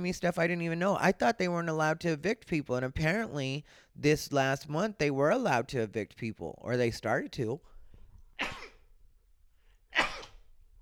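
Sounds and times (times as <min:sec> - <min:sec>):
speech: 0:00.0 - 0:07.7
person sneezing: 0:08.4 - 0:08.9, 0:09.9 - 0:10.5.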